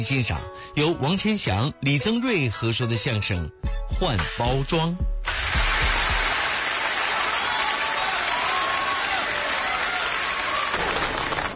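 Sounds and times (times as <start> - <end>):
speech: 0.0 - 5.1
sustained applause from a large audience: 5.3 - 11.5.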